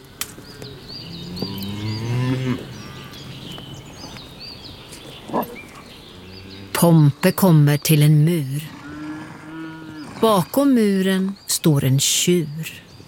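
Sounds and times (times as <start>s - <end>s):
small birds chirping outdoors: 0.0s - 13.0s
cow mooing: 1.0s - 3.5s, 5.3s - 6.8s, 8.4s - 10.5s
speech: 6.8s - 8.8s, 10.2s - 12.9s.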